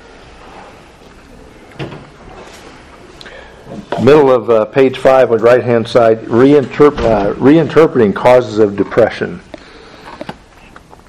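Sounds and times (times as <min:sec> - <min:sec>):
steady hum of room noise: 0:00.0 - 0:11.0
speech: 0:03.7 - 0:09.5
door shutting with a thud: 0:06.9 - 0:07.4.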